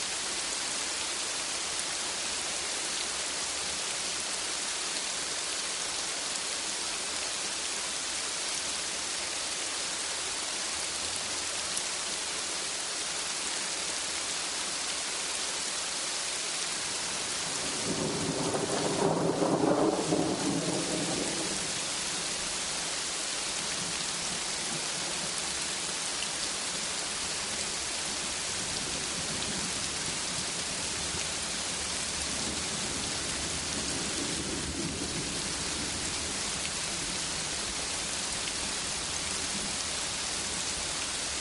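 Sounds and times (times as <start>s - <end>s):
steady rain hiss: 0.0s - 41.4s
gentle thunder rumbling: 17.6s - 21.8s.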